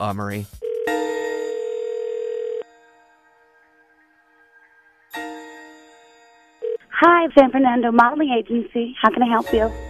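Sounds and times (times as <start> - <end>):
speech: 0.0 - 1.0, 7.2 - 9.8
loud electronic telephone ringback tone: 0.6 - 3.0, 6.6 - 7.0.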